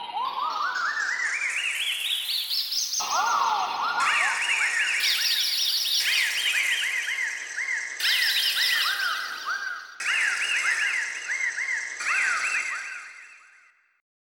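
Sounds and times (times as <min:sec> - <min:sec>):
bird tweeting: 0:00.0 - 0:13.2.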